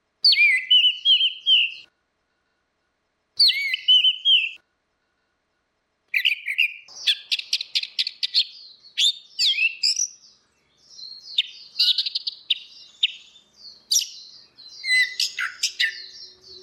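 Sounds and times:
orange-headed thrush singing a varied run of whistled notes: 0:00.2 - 0:01.9, 0:03.4 - 0:04.6, 0:06.2 - 0:16.6.

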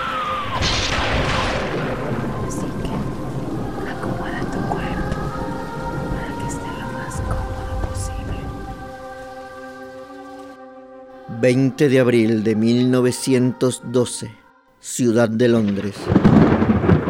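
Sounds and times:
thunder rumbling on a cold stormy night: 0:00.0 - 0:09.8, 0:15.6 - 0:17.0
steady loud rain on a stormy night: 0:00.0 - 0:10.5, 0:16.0 - 0:17.0
speech: 0:11.4 - 0:16.4.

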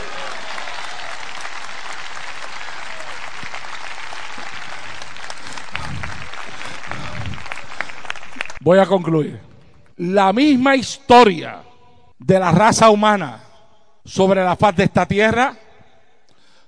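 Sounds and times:
church congregation applauding during a sermon: 0:00.0 - 0:08.8
speech: 0:08.7 - 0:13.4, 0:14.0 - 0:15.6.

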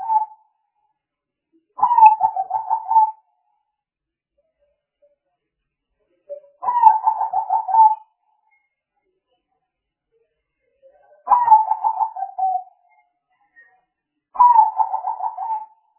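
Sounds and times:
spotted dove cooing: 0:00.0 - 0:00.4, 0:01.8 - 0:03.2, 0:06.6 - 0:08.0, 0:11.3 - 0:12.6, 0:14.4 - 0:15.7.

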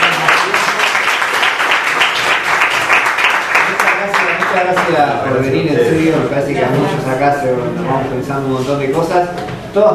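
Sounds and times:
audience applause at a class talk: 0:00.0 - 0:04.9
speech: 0:04.6 - 0:09.9.

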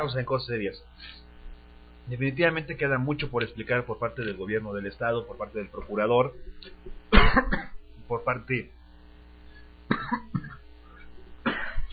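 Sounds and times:
speech: 0:00.0 - 0:01.3, 0:02.1 - 0:08.8, 0:09.9 - 0:10.6
man coughing: 0:07.1 - 0:07.8, 0:09.9 - 0:11.9.

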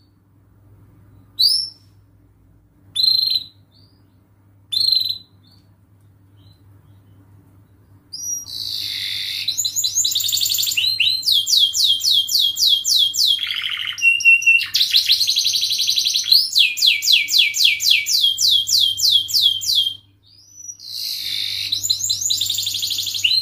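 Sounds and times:
faint hum: 0:00.0 - 0:23.4
canary singing nonstop with varied trills: 0:01.1 - 0:02.0, 0:02.9 - 0:05.7, 0:06.3 - 0:07.3, 0:07.9 - 0:23.4.

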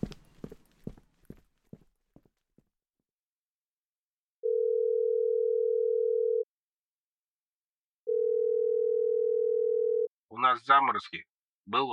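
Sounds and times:
telephone line tone as the receiver is put down: 0:04.4 - 0:06.5, 0:08.1 - 0:10.1
speech: 0:10.4 - 0:11.9.

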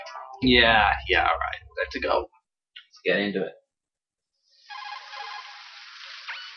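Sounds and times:
speech: 0:00.1 - 0:02.4, 0:03.0 - 0:03.6
video game incoming call ringtone with fast warbling trill: 0:04.7 - 0:05.8.

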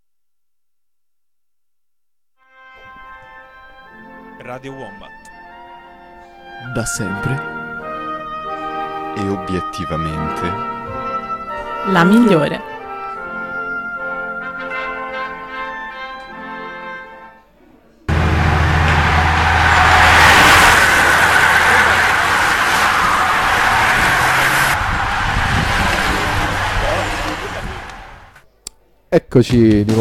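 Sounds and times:
speech: 0:04.5 - 0:05.4, 0:06.6 - 0:07.6, 0:09.2 - 0:10.8, 0:11.8 - 0:12.7, 0:29.3 - 0:29.9
racing bicycles passing on the road during the Giro d'Italia: 0:18.1 - 0:28.4.

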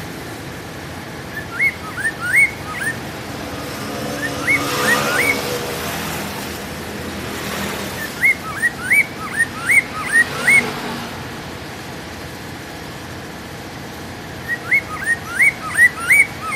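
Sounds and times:
Hwamei giving rising whistled notes: 0:01.2 - 0:05.8, 0:07.9 - 0:10.8, 0:14.4 - 0:16.5.

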